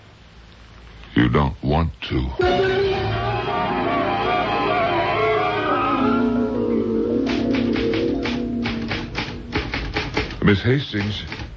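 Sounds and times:
speech: 1.2 - 2.9, 10.5 - 11.5
steady sustained tonal background: 2.4 - 10.4
sharp typewriter keystrokes: 7.3 - 11.5.

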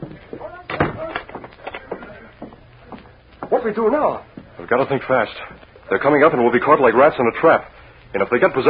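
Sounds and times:
voices murmuring: 0.0 - 8.6
door thudding shut: 0.7 - 1.4
speech: 3.6 - 8.6.

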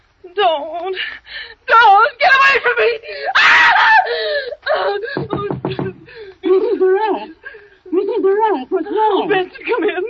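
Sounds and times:
speech: 0.4 - 5.3, 8.1 - 10.0
woman screaming in distress in her sleep: 1.7 - 5.5
woman sobbing gasps: 3.0 - 5.3, 6.0 - 6.4.

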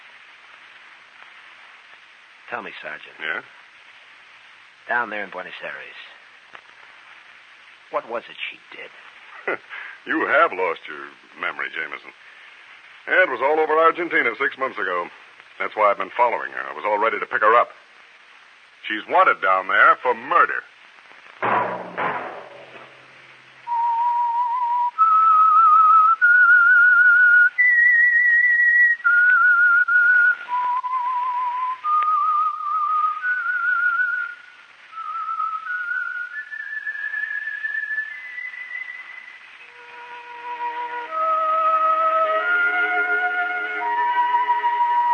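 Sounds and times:
speech: 2.5 - 3.6, 4.9 - 6.2, 7.9 - 12.4, 13.0 - 17.8, 18.8 - 20.8
brief thump: 21.4 - 23.2
whistled melody of sustained stepping notes: 23.6 - 45.1.

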